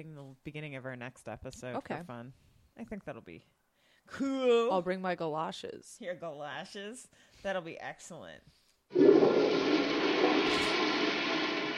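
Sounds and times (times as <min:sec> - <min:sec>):
speech: 0:00.0 - 0:09.9
toilet flushing: 0:08.9 - 0:11.7.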